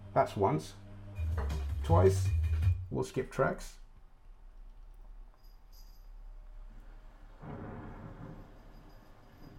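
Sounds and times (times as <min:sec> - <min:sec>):
speech: 0:00.1 - 0:00.8, 0:01.9 - 0:03.8
low rolling rumble of thunder: 0:07.4 - 0:08.8.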